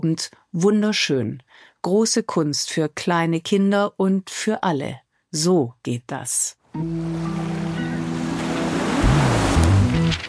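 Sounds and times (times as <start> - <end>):
speech: 0.0 - 7.4
ocean waves: 6.8 - 10.2
wind: 6.8 - 10.2.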